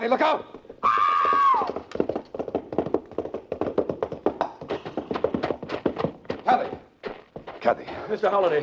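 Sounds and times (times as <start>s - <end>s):
speech: 0.0s - 0.6s, 7.7s - 8.6s
horse galloping with hoofbeats: 0.0s - 8.6s
brief high falling cry: 0.8s - 1.8s.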